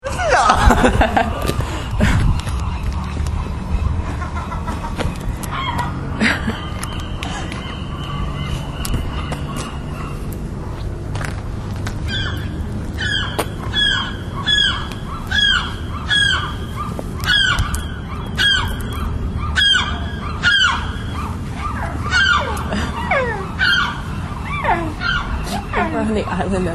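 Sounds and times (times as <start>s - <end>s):
laughter: 0.0s - 2.6s, 6.0s - 7.6s
harsh sharp bird calls: 1.1s - 10.8s, 12.0s - 26.7s.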